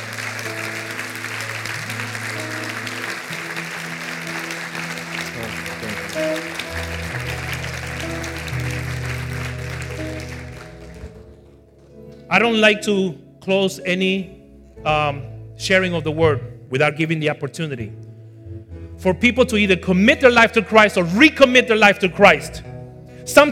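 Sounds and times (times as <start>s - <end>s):
audience clapping loudly: 0.0s - 11.9s
speech: 12.4s - 18.0s, 19.0s - 23.5s.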